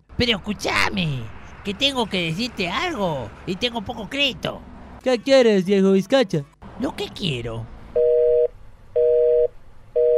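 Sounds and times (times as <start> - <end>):
speech: 0.2 - 7.7
mobile phone busy tone after a dropped call: 8.0 - 10.1.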